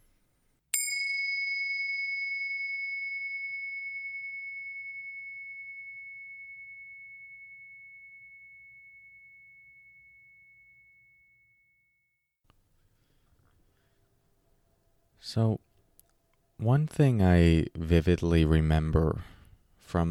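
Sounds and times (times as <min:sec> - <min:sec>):
bell struck and ringing with a clear sustained metallic tone: 0:00.8 - 0:11.6
speech: 0:15.2 - 0:15.7, 0:16.6 - 0:20.0.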